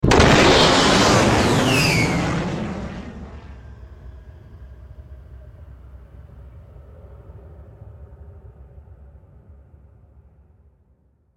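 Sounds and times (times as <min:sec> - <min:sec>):
jet fighter flying: 0:00.0 - 0:04.0.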